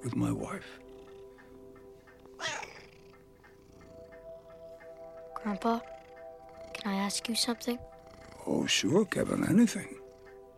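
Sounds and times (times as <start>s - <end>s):
speech: 0.0s - 0.9s, 5.4s - 6.0s, 6.8s - 10.0s
cat meowing: 2.4s - 3.0s.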